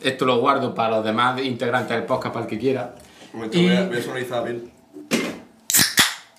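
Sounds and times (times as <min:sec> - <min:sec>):
speech: 0:00.0 - 0:04.8
beer being opened: 0:05.7 - 0:06.3.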